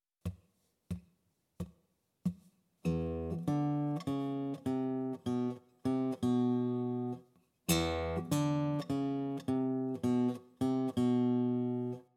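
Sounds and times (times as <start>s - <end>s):
blues guitar in open tuning: 2.9s - 12.0s.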